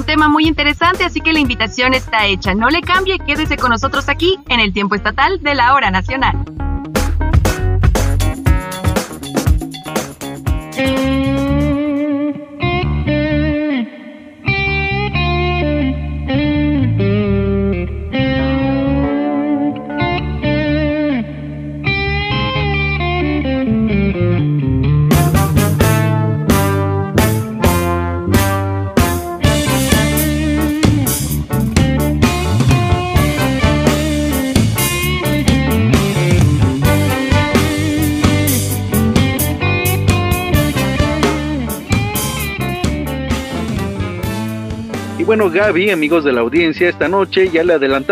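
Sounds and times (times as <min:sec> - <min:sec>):
band drums: 0:00.0 - 0:04.2, 0:06.8 - 0:11.9, 0:25.0 - 0:48.1
steady bass: 0:00.0 - 0:12.0, 0:12.6 - 0:13.7, 0:14.4 - 0:48.1
distorted electric guitar: 0:00.0 - 0:48.1
speech: 0:00.1 - 0:06.6, 0:45.5 - 0:48.1.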